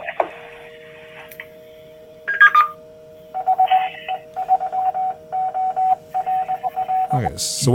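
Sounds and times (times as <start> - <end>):
faint radio static and hum: 0.0 - 7.7
radio repeater sending its call sign in Morse code: 2.3 - 7.4
speech: 7.2 - 7.7.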